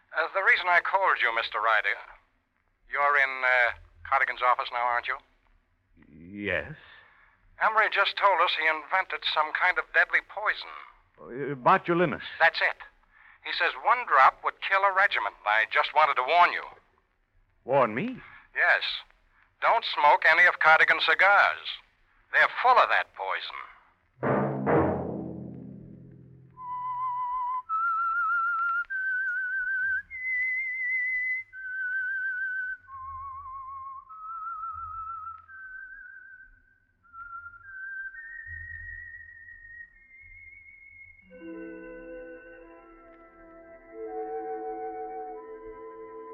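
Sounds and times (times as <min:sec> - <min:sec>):
speech: 0:00.2 - 0:02.1, 0:02.9 - 0:05.3, 0:06.4 - 0:06.9, 0:07.6 - 0:16.8, 0:17.6 - 0:24.4
brief opening crash: 0:24.2 - 0:26.7
sustained instrumental chords: 0:24.2 - 0:26.8
lone whistler whistling a slow eerie radio theme melody: 0:26.5 - 0:46.3.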